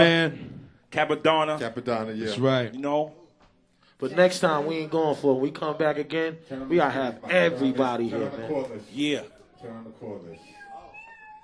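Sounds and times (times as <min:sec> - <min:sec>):
speech: 0:00.0 - 0:03.2, 0:04.0 - 0:10.6
cat meowing: 0:10.3 - 0:11.4.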